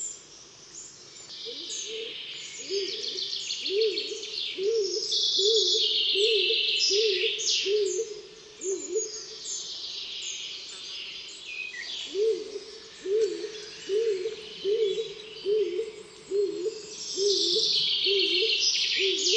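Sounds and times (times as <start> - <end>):
songbirds chirping: 0.0 - 19.3
stock dove giving deep repeated coos: 1.5 - 9.1, 12.1 - 19.3.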